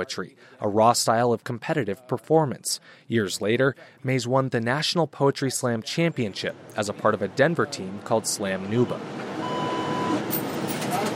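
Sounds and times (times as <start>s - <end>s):
voices: 0.0s - 9.1s, 10.8s - 11.1s
speech: 0.0s - 9.5s
road noise inside a moving city bus: 6.4s - 11.1s
city bus engine rumble: 8.6s - 11.1s.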